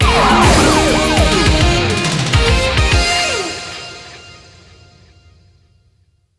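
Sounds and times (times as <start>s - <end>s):
slot machine free spin end jingle: 0.0s - 3.5s.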